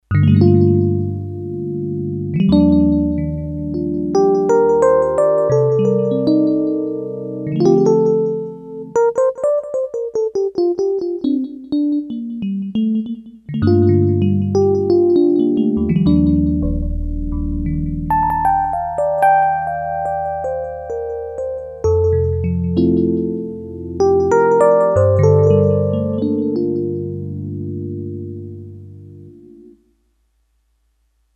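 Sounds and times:
Korg DS-8 electric piano factory patch: 0.0s - 29.8s.

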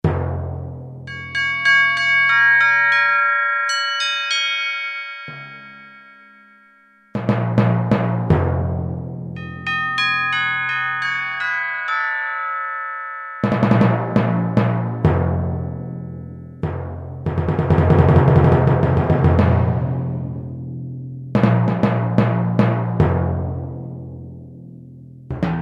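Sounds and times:
timpani on a synthesizer: 0.0s - 1.2s, 7.2s - 9.9s, 13.4s - 24.7s, 25.3s - 25.5s
chimes on a synthesizer: 1.1s - 7.8s, 9.4s - 16.7s.

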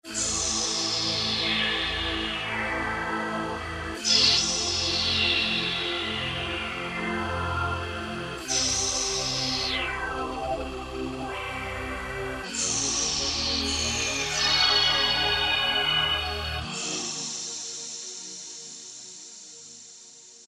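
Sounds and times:
synthesizer vocal factory preset: 0.1s - 18.0s.

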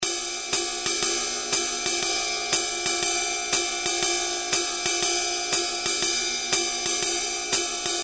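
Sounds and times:
Roland R-8 drum machine swing beat: 0.0s - 8.0s.

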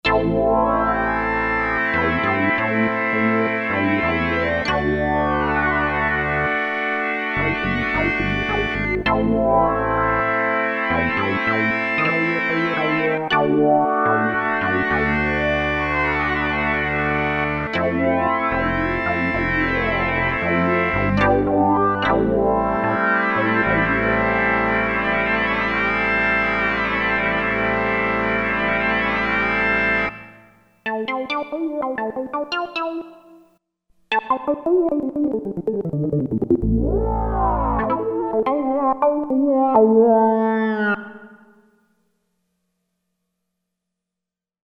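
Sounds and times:
Roland Jupiter-8 synthesizer NEG SYNC factory patch: 0.1s - 33.4s, 34.1s - 41.5s.

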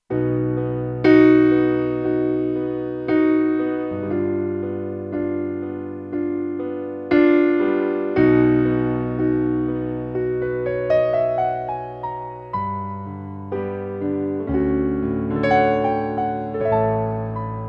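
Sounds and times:
soft piano on a Kurzweil K2500X: 0.0s - 17.6s.

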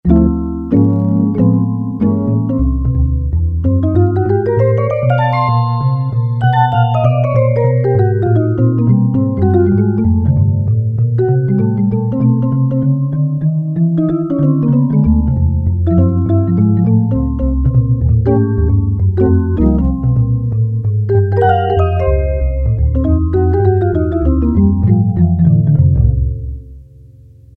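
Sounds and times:
vibraphone tone on a Casio CT-370 keyboard: 0.1s - 26.6s
jazz guitar tone on a Casio CT-370 keyboard: 0.1s - 27.2s.

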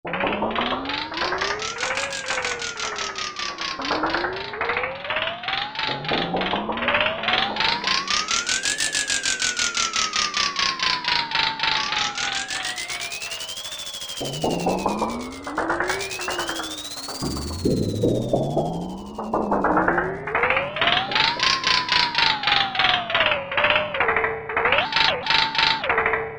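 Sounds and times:
toy cycler: 0.1s - 26.1s.

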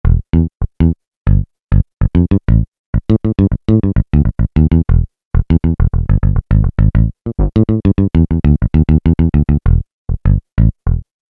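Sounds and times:
finger-muted bass on a Peavey DPM Spectrum Bass synthesizer: 0.0s - 11.1s.

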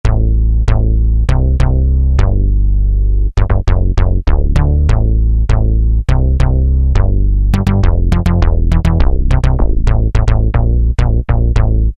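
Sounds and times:
Alesis Z2 EuroDance synth bass: 0.0s - 11.9s.

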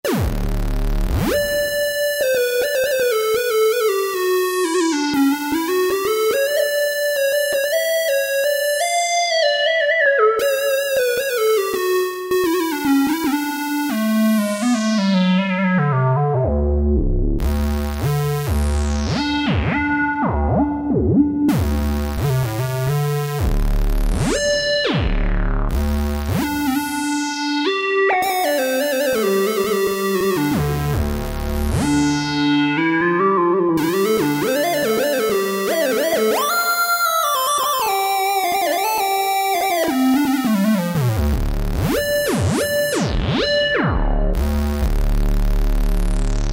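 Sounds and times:
Kurzweil K2000 synthesizer lead: 0.1s - 46.5s.

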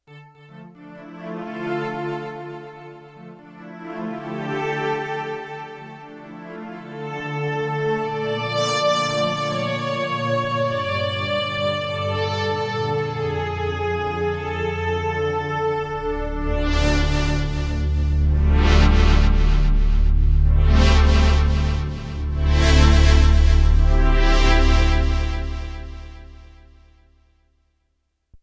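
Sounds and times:
atmospheric synth strings on Roland VC-1: 0.2s - 26.9s.

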